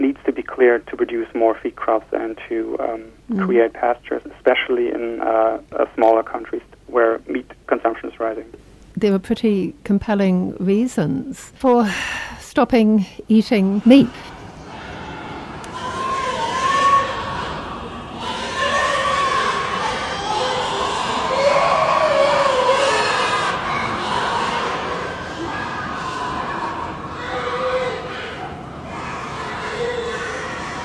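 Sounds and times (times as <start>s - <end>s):
speech: 0.1s - 14.3s
many pigs squealing and shrieking in a slaughterhouse: 15.8s - 30.8s.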